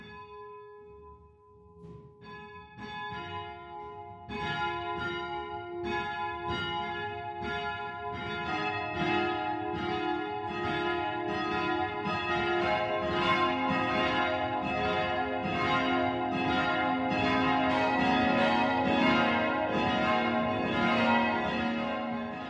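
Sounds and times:
church bells ringing the noon peal in Lippertsgrün, Upper Franconia: 0:02.4 - 0:22.4.

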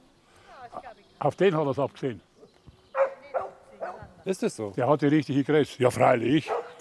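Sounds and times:
speech: 0:01.2 - 0:02.3, 0:04.2 - 0:06.6
dog on a leash barking: 0:03.0 - 0:04.1, 0:06.4 - 0:06.7.

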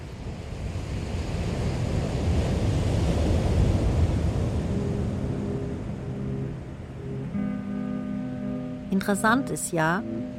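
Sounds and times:
wind rumble: 0:00.0 - 0:07.6
ocean waves breaking on shore: 0:00.0 - 0:10.3
speech: 0:09.0 - 0:10.3.

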